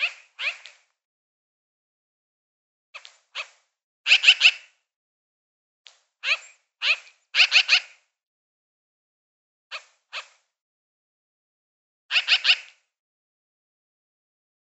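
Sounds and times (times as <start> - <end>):
magpie making harsh scratchy chirps: 0.0 - 0.6, 4.1 - 4.6, 6.2 - 7.9, 12.2 - 12.6.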